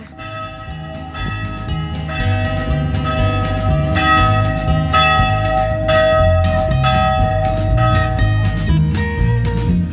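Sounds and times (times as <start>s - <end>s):
church bells ringing: 0.0s - 9.8s.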